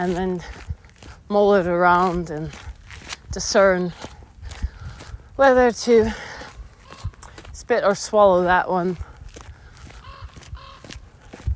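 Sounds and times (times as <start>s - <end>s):
speech: 0.0s - 0.7s, 1.3s - 2.7s, 3.3s - 4.1s, 5.4s - 6.3s, 7.7s - 9.1s
footsteps crunching on an outdoor walk: 0.0s - 11.5s
crow cawing: 10.0s - 11.0s.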